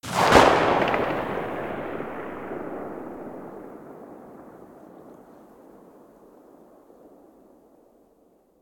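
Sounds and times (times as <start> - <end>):
distant Mosin rifle muzzle shot: 0.0 - 5.9.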